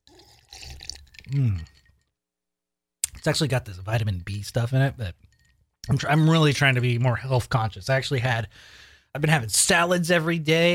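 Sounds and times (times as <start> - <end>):
person drinking water: 0.0 - 2.1
person exhaling a satisfied ahh: 1.3 - 1.7
speech: 1.3 - 1.8, 3.2 - 10.7.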